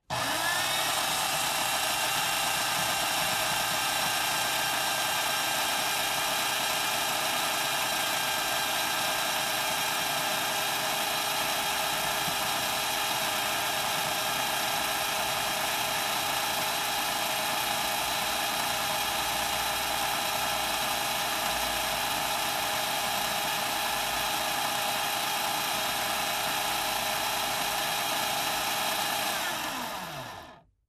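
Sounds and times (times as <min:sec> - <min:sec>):
coffee grinder: 0:00.0 - 0:30.6.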